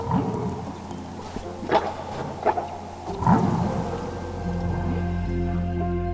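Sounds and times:
humpback whale calls underwater: 0.0s - 6.0s.

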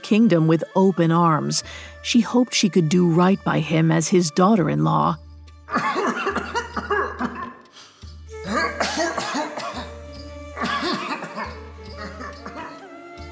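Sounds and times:
speech: 0.1s - 6.2s
king coughing in harsh bursts at night in the palace: 5.7s - 7.6s, 8.5s - 10.0s, 10.6s - 12.7s.

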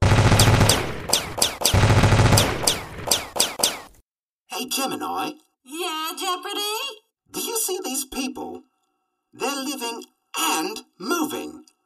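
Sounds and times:
machine gun fire: 0.0s - 4.0s
speech: 4.8s - 8.7s, 9.3s - 11.7s.

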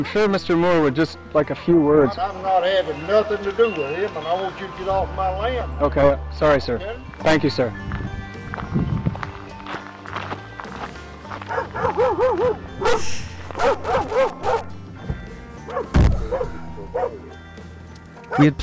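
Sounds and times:
speech: 0.0s - 8.0s, 11.5s - 14.4s, 18.4s - 18.6s
footsteps of a person walking to a van: 7.8s - 16.4s
dog barking and yipping chasing at a person's heels: 11.5s - 14.8s, 15.7s - 17.3s, 18.2s - 18.6s
sharp thump: 15.9s - 16.5s.

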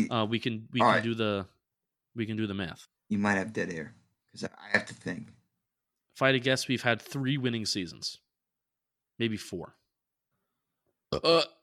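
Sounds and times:
speech: 0.0s - 1.6s, 2.2s - 5.4s, 6.2s - 8.2s, 9.2s - 9.8s, 11.1s - 11.6s
person burping: 11.1s - 11.6s.

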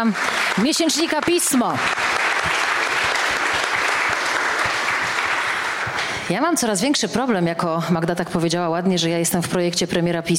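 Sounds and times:
speech: 0.0s - 2.6s, 6.3s - 10.3s
large crowd audience applause: 0.0s - 6.4s.

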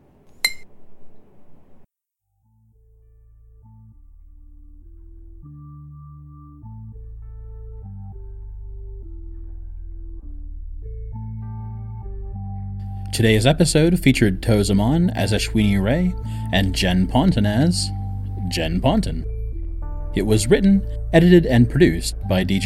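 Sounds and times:
glass clinking while being refilled: 0.4s - 0.7s
speech: 13.2s - 19.3s, 20.2s - 22.6s.

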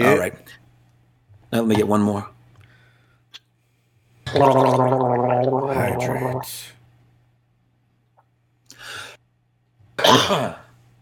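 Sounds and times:
speech: 0.0s - 0.6s, 1.5s - 2.4s, 4.3s - 6.8s, 10.1s - 10.6s
dry cough: 10.0s - 10.7s.

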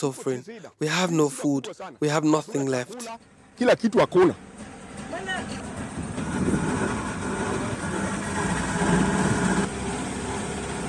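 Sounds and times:
speech: 0.0s - 5.7s
small boat motor droning on floodwater over submerged roads in Kisumu: 3.2s - 10.8s.

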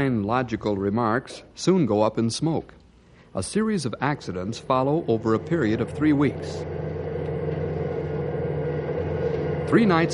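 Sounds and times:
speech: 0.0s - 2.8s, 3.4s - 6.9s, 9.7s - 10.1s
bus engine rumbling on the road: 4.5s - 10.1s.

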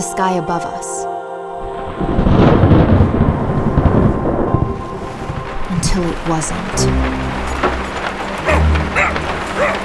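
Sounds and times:
speech: 0.0s - 0.9s, 2.0s - 2.2s, 5.9s - 7.2s
rain at sea: 1.6s - 9.8s
storm rumbling at sea: 1.7s - 9.8s
dog on a sailboat at sea barking and whimpering: 7.6s - 9.8s.

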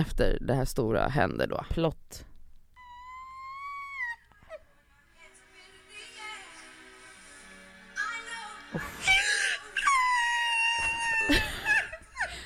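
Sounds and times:
speech: 0.0s - 2.3s, 8.7s - 8.9s
hysterical crying played back from a recording: 2.8s - 4.6s, 8.7s - 12.4s
laughter: 10.8s - 12.4s.

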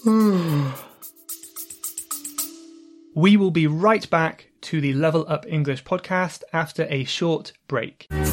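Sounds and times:
speech: 0.0s - 0.9s, 3.2s - 8.2s
woman yawning: 0.0s - 0.9s.

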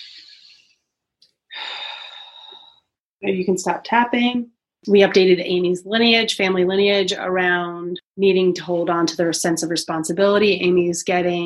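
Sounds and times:
person taking a huge deep breath in and out: 0.0s - 0.8s, 1.5s - 2.9s
speech: 3.2s - 11.4s.

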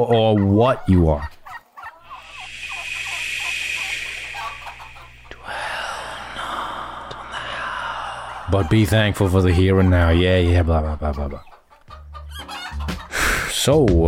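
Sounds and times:
speech: 0.0s - 1.4s, 8.5s - 11.5s, 13.6s - 14.0s
turkeys gobbling: 0.0s - 13.4s
outdoor noise: 1.4s - 8.6s.

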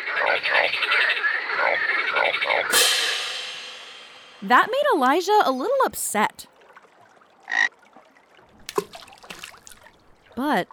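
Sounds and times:
chorus of frogs croaking: 0.0s - 2.8s, 7.4s - 7.8s
speech: 0.4s - 3.2s, 4.4s - 6.5s, 10.4s - 10.7s.

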